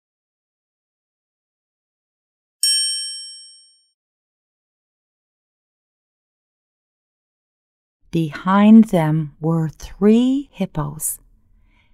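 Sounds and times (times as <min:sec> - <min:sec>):
bright doorbell ding: 0:02.6 - 0:03.9
speech: 0:08.1 - 0:11.2.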